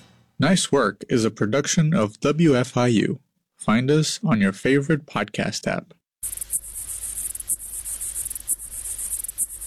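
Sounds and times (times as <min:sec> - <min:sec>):
speech: 0:00.4 - 0:06.4
male lesser water boatman stridulation song: 0:06.2 - 0:09.6.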